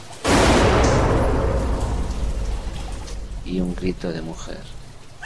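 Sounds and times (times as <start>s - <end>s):
gunshot inside a house: 0.2s - 3.5s
speech: 3.5s - 4.8s.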